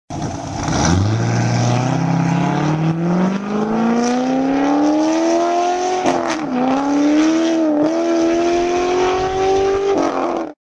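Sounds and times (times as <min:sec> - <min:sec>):
Corvette engine: 0:00.1 - 0:10.5.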